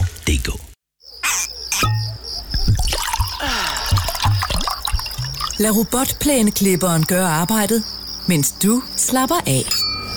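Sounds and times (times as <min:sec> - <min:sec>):
speech: 0:00.4 - 0:00.7, 0:05.6 - 0:09.8
underground stream water trickling and dripping in cave passages: 0:01.8 - 0:07.6.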